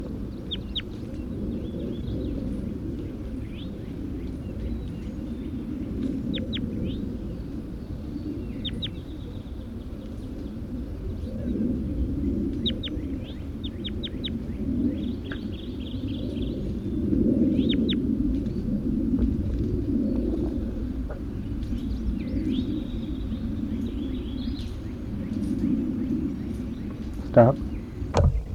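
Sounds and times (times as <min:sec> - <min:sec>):
low rumble: 0:00.0 - 0:28.5
bird about to be released chirping: 0:00.4 - 0:01.1, 0:03.4 - 0:10.5, 0:12.5 - 0:16.8, 0:17.5 - 0:18.0, 0:21.3 - 0:28.5
speech: 0:27.4 - 0:27.6.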